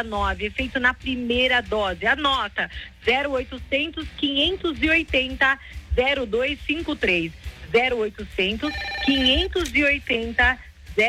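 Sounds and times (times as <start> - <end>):
speech: 0.0 - 11.0
telephone ringing with an incoming call: 8.6 - 9.4.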